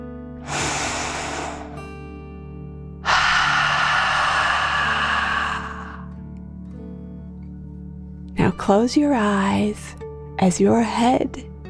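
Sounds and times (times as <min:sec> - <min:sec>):
deep breath drawn in through the nose: 0:00.4 - 0:02.2, 0:03.0 - 0:06.2
longer louder exhale pushed out through the mouth: 0:00.4 - 0:02.2, 0:03.0 - 0:06.2
steady low hum: 0:00.4 - 0:06.2
speech: 0:08.6 - 0:11.5.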